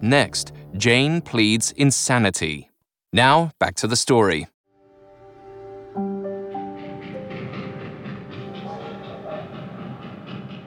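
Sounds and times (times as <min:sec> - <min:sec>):
speech: 0:00.0 - 0:04.5
train wheels clattering: 0:06.4 - 0:10.6.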